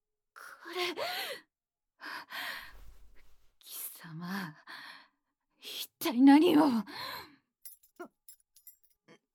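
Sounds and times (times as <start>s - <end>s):
speech: 0.7s - 2.4s, 6.1s - 7.1s
bunch of keys jangling while undoing restraints: 7.6s - 9.0s.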